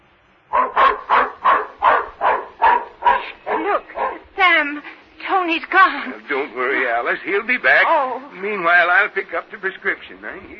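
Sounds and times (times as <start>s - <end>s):
dog barking as it runs off after a cat: 0.5s - 4.4s
speech: 5.5s - 10.5s.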